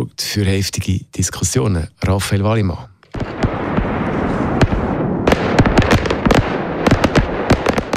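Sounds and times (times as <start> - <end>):
speech: 0.0 - 2.9
constant roaring backdrop: 3.0 - 7.9
fireworks exploding with sharp bangs and crackles: 3.1 - 7.9.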